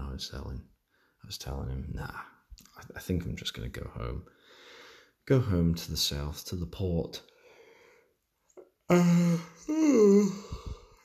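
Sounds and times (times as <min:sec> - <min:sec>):
speech: 0:00.2 - 0:07.3, 0:08.9 - 0:10.8
long drawn-out yawn with voiced groan: 0:08.9 - 0:11.0.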